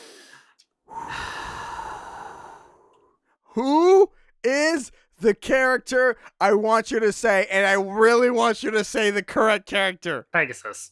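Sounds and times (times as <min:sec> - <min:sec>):
long breath drawn in: 0:00.0 - 0:03.4
speech: 0:03.6 - 0:03.8, 0:04.4 - 0:10.8.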